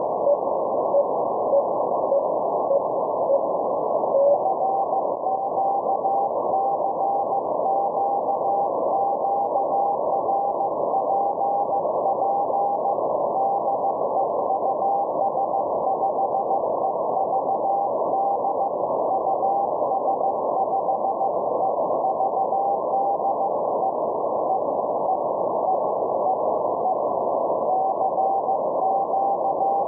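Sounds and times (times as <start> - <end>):
radio receiver audio at 7029kHz: 0.0 - 29.8.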